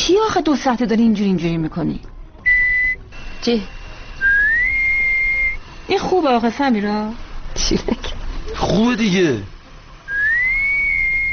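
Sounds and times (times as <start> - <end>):
speech: 0.2 - 2.1, 3.4 - 3.8, 5.9 - 9.5
single clear high whistle: 2.4 - 3.2, 4.2 - 5.7, 10.1 - 11.3.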